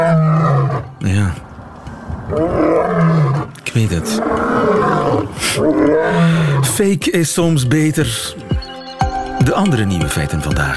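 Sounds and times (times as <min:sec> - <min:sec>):
lion roaring: 0:00.0 - 0:01.0, 0:02.2 - 0:06.8
speech: 0:03.8 - 0:08.4, 0:09.5 - 0:10.7.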